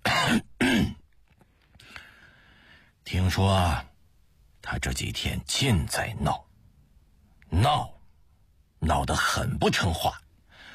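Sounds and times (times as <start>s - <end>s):
man giving a deliberate throaty cough: 0.0s - 1.0s
speech: 0.3s - 0.9s, 3.2s - 3.9s, 4.7s - 6.5s, 7.5s - 8.0s, 8.8s - 10.2s.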